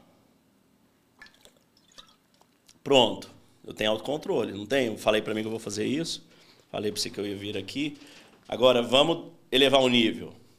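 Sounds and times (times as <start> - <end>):
person sipping and gulping water: 1.2 - 2.8
speech: 2.8 - 10.4.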